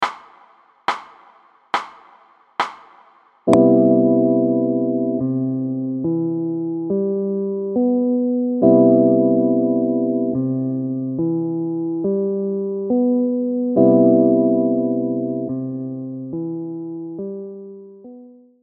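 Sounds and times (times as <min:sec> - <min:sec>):
chord tone: 0:03.6 - 0:12.0, 0:12.6 - 0:17.2.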